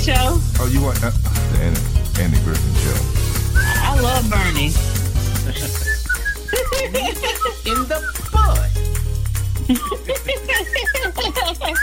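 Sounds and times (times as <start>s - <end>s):
speech: 0.1s - 9.1s, 9.7s - 11.8s
person whistling a tune: 3.5s - 4.1s, 5.6s - 8.6s, 10.6s - 11.8s
laughter: 5.2s - 8.6s, 9.7s - 11.8s.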